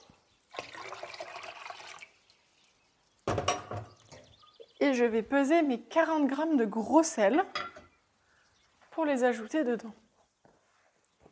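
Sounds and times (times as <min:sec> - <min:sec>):
litre of water being poured: 0:00.0 - 0:03.4
speech: 0:04.8 - 0:07.7, 0:09.0 - 0:10.0.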